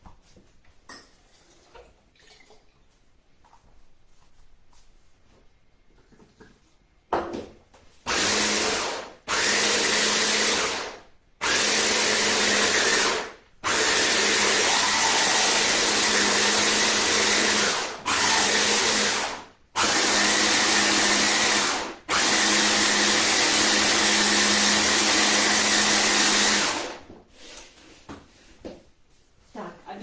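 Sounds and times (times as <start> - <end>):
blender blending food with added water: 8.1 - 27.1.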